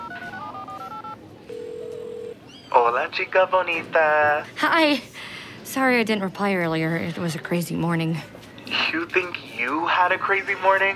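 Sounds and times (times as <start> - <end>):
phone dialing tones: 0.0 - 2.4
faint noise: 0.0 - 10.9
speech: 2.8 - 10.9.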